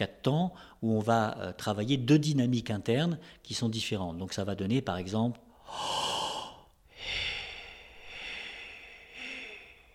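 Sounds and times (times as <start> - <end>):
speech: 0.0 - 6.1
paced breathing of one count inhaling and three counts exhaling: 5.5 - 9.9.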